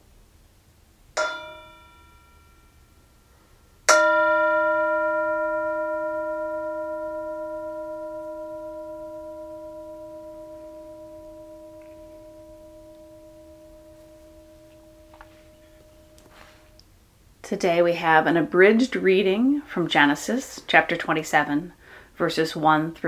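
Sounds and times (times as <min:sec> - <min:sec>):
Tibetan singing bowl struck and ringing: 0:01.2 - 0:03.3, 0:03.9 - 0:16.8
speech: 0:17.5 - 0:23.0.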